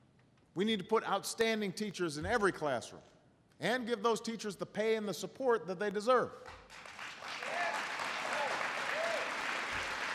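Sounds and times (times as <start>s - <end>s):
speech: 0.6s - 6.9s
large audience applause: 6.7s - 10.1s.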